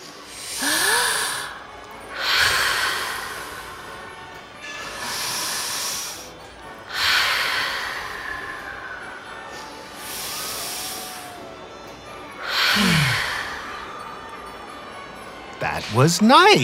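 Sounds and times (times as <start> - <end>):
slow deep breaths taken together to calm down: 0.0 - 15.0
speech: 15.9 - 16.6.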